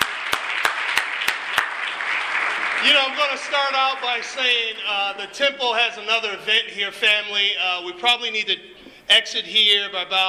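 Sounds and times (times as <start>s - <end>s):
audience applause: 0.0s - 5.2s
speech: 2.8s - 10.2s.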